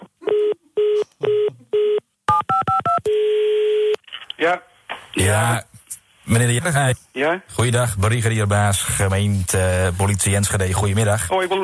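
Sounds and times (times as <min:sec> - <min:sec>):
telephone keypad DTMF dialing tones: 0:00.3 - 0:04.0
speech: 0:04.4 - 0:05.7, 0:06.3 - 0:11.6.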